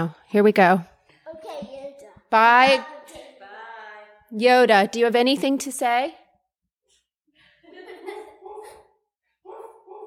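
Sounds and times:
speech: 0:00.0 - 0:00.9, 0:02.3 - 0:03.3, 0:04.3 - 0:06.2
laughter: 0:07.4 - 0:09.1
person's voice imitating a dog barking: 0:09.5 - 0:10.0.

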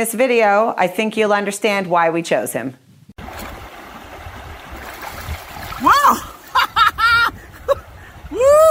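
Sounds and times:
speech: 0:00.0 - 0:02.8
steady rushing river water: 0:03.2 - 0:08.6.

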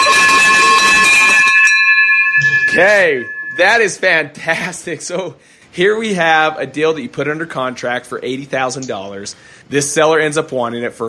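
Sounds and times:
bright victory bell ringing for a real estate deal: 0:00.0 - 0:04.1
speech: 0:02.8 - 0:11.0.

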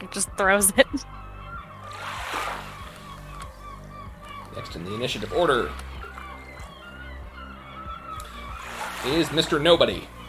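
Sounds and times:
seagulls squawking and crying: 0:00.0 - 0:10.2
speech: 0:00.2 - 0:01.2, 0:04.6 - 0:05.9, 0:09.0 - 0:10.2
water sloshing: 0:01.0 - 0:10.2
loud wash of noise: 0:01.8 - 0:03.4, 0:08.6 - 0:09.6.

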